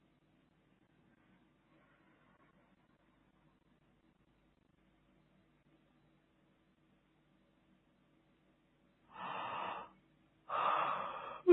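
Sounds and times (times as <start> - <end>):
person yawning: 10.6 - 11.5.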